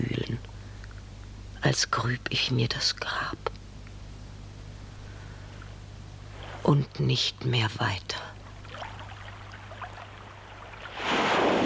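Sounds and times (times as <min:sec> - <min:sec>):
speech: 0:01.6 - 0:03.5, 0:06.6 - 0:08.3
water lapping and trickling: 0:08.4 - 0:11.6
wave breaking against rocks into a hissing wash of foam: 0:10.8 - 0:11.6.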